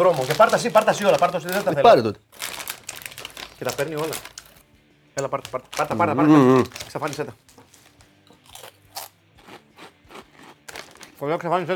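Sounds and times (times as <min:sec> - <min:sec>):
speech: 0:00.0 - 0:02.4, 0:03.6 - 0:04.3, 0:05.2 - 0:07.5, 0:11.2 - 0:11.7
crunching of crispy Asian snacks: 0:00.0 - 0:11.2.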